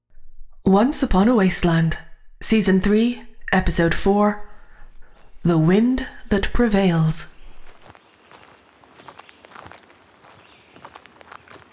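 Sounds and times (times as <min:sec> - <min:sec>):
speech: 0:00.7 - 0:04.5, 0:05.4 - 0:07.3
footsteps of people on a long walk: 0:04.8 - 0:05.9, 0:07.1 - 0:11.7.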